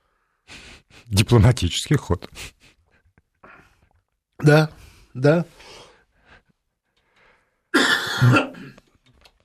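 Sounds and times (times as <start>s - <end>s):
quiet breathy sounds: 0.0s - 1.1s, 3.4s - 4.0s, 4.7s - 7.7s
speech: 1.1s - 2.6s, 4.4s - 5.8s, 8.2s - 8.5s
person coughing and clearing throat: 7.8s - 8.8s.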